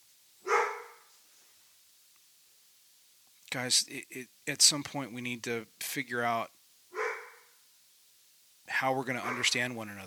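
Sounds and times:
dog barking: 0.4s - 1.1s, 6.9s - 7.5s, 9.2s - 9.6s
speech: 3.5s - 6.6s, 8.7s - 10.0s.

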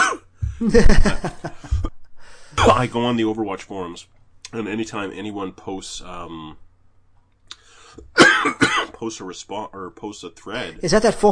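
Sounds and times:
person coughing with harsh raspy bursts: 0.0s - 0.7s, 2.6s - 3.0s, 8.2s - 9.0s
laughter: 0.6s - 1.9s
speech: 0.6s - 1.9s, 2.6s - 6.6s, 8.0s - 11.3s
faint short throat sound: 1.6s - 2.0s, 2.6s - 2.9s.

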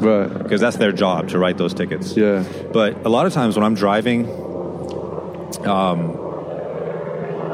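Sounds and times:
speech: 0.0s - 4.5s, 5.6s - 6.2s
helicopter flying overhead: 0.0s - 7.5s.

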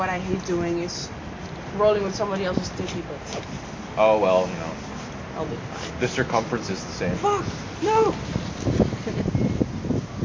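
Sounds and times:
speech: 0.0s - 9.5s
wind buffeting a microphone: 1.8s - 3.1s, 5.6s - 10.2s.

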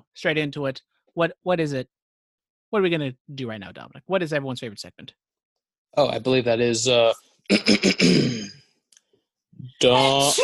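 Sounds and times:
speech: 0.2s - 2.0s, 2.7s - 5.2s, 5.9s - 8.6s, 9.6s - 10.4s
person sneezing: 7.5s - 8.6s.

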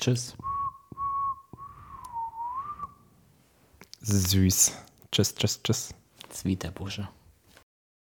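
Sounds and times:
speech: 0.0s - 0.5s, 4.0s - 7.2s
faint noise: 0.0s - 7.6s
final whistle blasts signalling the end of play: 0.4s - 2.9s.

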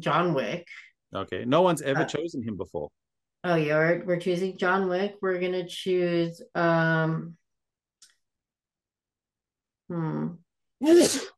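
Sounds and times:
speech: 0.0s - 7.4s, 9.9s - 11.3s
person sneezing: 10.8s - 11.3s.

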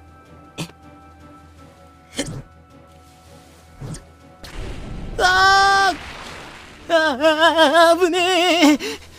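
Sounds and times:
ceramic pot hand grenades exploding from a pirate ship: 4.4s - 7.6s
speech: 7.0s - 9.0s.

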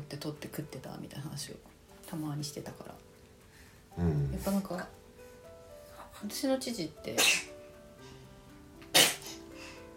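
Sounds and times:
speech: 0.1s - 3.1s, 4.0s - 5.0s, 6.2s - 7.5s
person sneezing: 7.2s - 7.5s, 8.9s - 9.4s.

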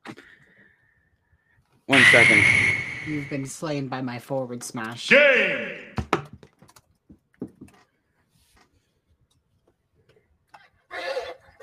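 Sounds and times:
horse neighing: 1.9s - 3.5s
speech: 1.9s - 5.9s.

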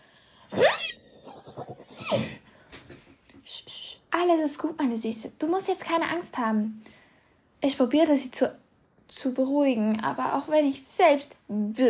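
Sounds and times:
horse whinnying: 0.5s - 2.4s
speech: 4.2s - 7.0s, 7.6s - 8.6s, 9.2s - 11.8s.

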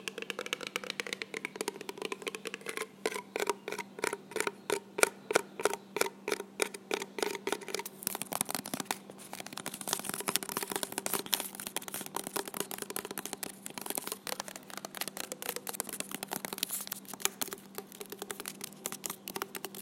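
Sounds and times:
quick taps on small cardboard boxes: 0.0s - 3.6s, 7.0s - 19.8s
faint low hum: 0.0s - 19.8s
scratchy rustling of small cardboard boxes: 7.9s - 19.8s.

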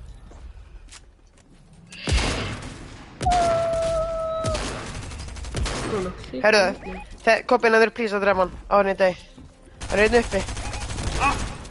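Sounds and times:
gunfire bursts in a video game: 2.1s - 6.2s, 9.8s - 11.6s
speech: 6.0s - 10.6s.

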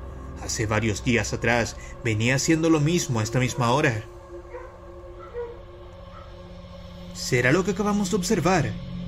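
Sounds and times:
speech: 0.4s - 4.2s, 7.2s - 8.9s
dog barking and howling: 3.0s - 6.5s.

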